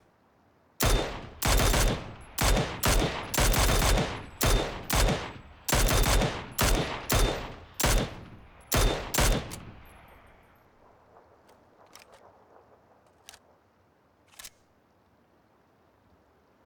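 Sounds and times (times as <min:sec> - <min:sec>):
Mini-14 rifle shots: 0:00.8 - 0:12.3.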